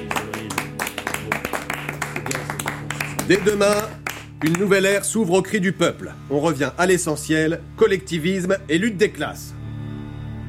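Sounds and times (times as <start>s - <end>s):
audience applause: 0.0s - 4.7s
tonal music: 0.0s - 10.4s
speech: 3.3s - 9.6s.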